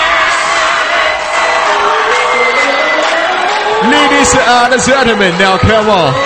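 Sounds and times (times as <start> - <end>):
large crowd screaming and cheering at a remix party: 0.0 - 6.2
speech: 4.2 - 6.2.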